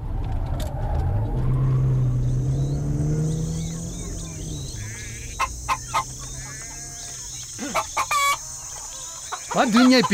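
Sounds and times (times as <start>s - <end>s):
steady low rumble: 0.0s - 7.4s
chicken clucking: 4.8s - 10.1s
speech: 9.6s - 10.1s.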